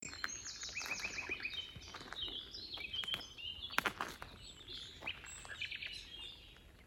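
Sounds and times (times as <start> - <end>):
common nightingale song: 0.0 - 6.8.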